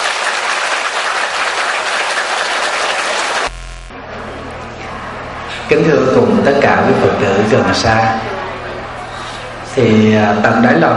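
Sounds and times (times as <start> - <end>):
large crowd applauding at a Buddhist gathering: 0.0 - 3.5
low hum: 3.4 - 5.6
speech: 5.7 - 8.3, 9.8 - 10.9.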